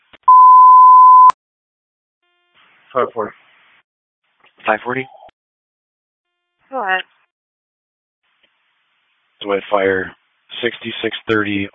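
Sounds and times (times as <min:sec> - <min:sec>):
fire control alert tone on a dispatch radio: 0:00.3 - 0:01.3
speech: 0:02.9 - 0:03.4, 0:04.7 - 0:05.2, 0:09.5 - 0:11.7.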